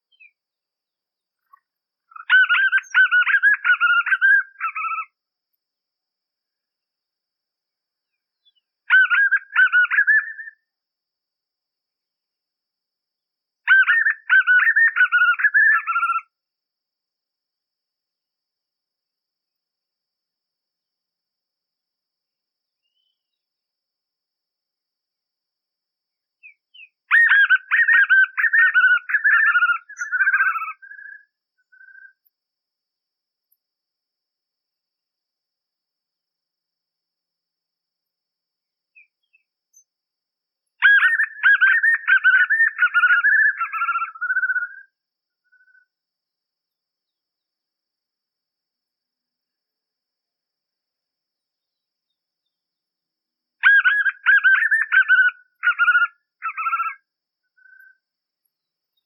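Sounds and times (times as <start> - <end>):
joao-bobo bird singing: 0.0 - 5.2, 8.1 - 10.7, 13.6 - 16.4, 22.8 - 23.5, 26.4 - 32.3, 38.9 - 40.0, 40.8 - 45.9, 53.6 - 59.0.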